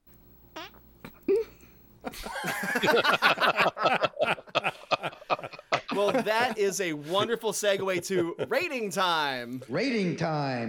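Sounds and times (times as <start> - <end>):
recorded fart noises: 0.5 - 1.4
laughter: 2.0 - 8.9
speech: 2.8 - 4.1, 6.0 - 10.6.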